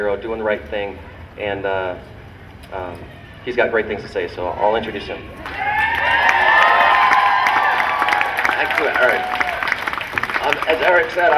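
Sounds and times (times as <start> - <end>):
speech: 0.0 - 5.6, 8.6 - 9.4, 10.7 - 11.3
large crowd cheering at a political rally: 5.3 - 11.3
overlapping shouts and whoops at a rally: 5.4 - 10.0
scattered clapping at a rally: 5.4 - 11.3.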